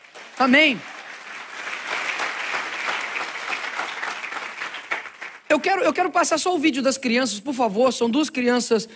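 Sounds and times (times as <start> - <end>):
audience applause during a sermon: 0.0 - 5.5
speech: 0.4 - 0.9, 5.5 - 8.9.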